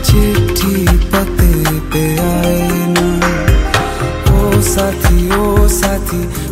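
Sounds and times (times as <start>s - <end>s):
Hindi song ringtone: 0.2s - 6.2s.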